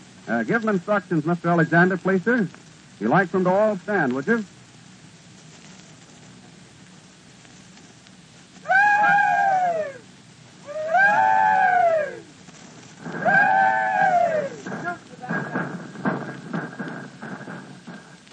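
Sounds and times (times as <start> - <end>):
noise of an old recording: 0.0 - 18.3
speech: 0.3 - 4.6
group of Confederate veterans giving a rebel yell: 8.6 - 12.4, 13.0 - 15.0
men shouting in a ragged overlapping burst: 8.7 - 10.1, 10.7 - 12.3, 13.1 - 15.5.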